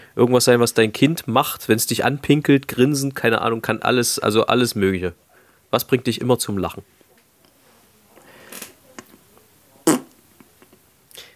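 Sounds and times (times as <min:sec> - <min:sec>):
speech: 0:00.2 - 0:07.0
fart: 0:09.8 - 0:10.2.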